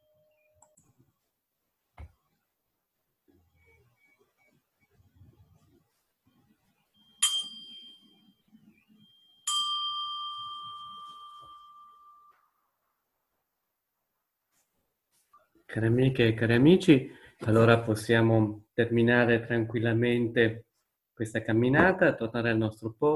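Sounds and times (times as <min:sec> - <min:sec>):
bell struck to end a walking practice: 0:07.1 - 0:08.4, 0:09.0 - 0:12.5
speech: 0:15.7 - 0:23.1.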